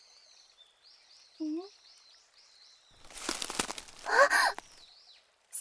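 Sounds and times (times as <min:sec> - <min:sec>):
rustling noise: 0:03.0 - 0:04.8
birds chirping in a forest: 0:03.0 - 0:04.9.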